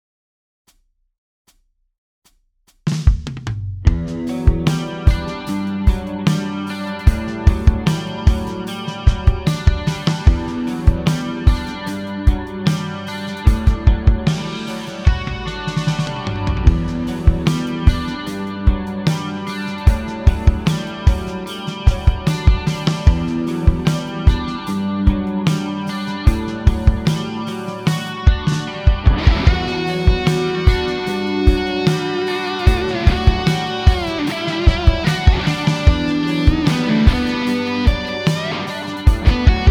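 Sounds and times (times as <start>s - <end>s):
classic rock guitar through Ampeg amplifier: 3.9s - 39.6s.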